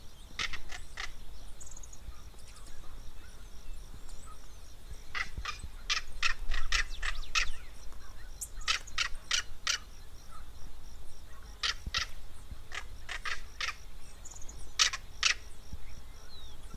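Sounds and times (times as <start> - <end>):
high insect drone in the Pantanal: 0.0 - 16.7
Southern crested caracara giving harsh rasping notes in the Pantanal: 0.3 - 3.5, 4.2 - 10.6, 11.2 - 15.6.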